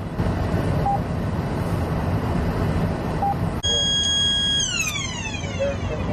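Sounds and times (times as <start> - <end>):
road and engine rumble: 0.0 - 6.1
police patrol computer electronic alert buzzer for expired plates: 3.6 - 5.2.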